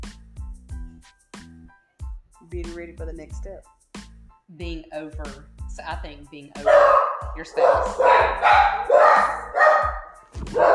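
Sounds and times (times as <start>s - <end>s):
speech: 2.5s - 3.8s, 4.5s - 9.4s
dogs barking loudly: 6.6s - 10.7s.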